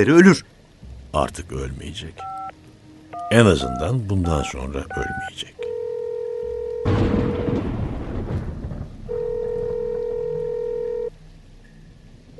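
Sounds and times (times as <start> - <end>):
speech: 0.0 - 2.5, 3.3 - 5.6
noisy rumble: 0.0 - 5.7, 6.8 - 12.3
telephone tone as a call is placed: 2.2 - 2.5, 3.1 - 6.9, 9.1 - 11.1.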